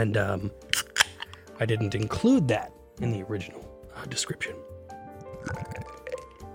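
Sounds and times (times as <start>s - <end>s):
speech: 0.0s - 0.7s, 1.6s - 4.7s
double dry-hopped India Pale Ale beer glugging into a glass: 5.1s - 6.5s.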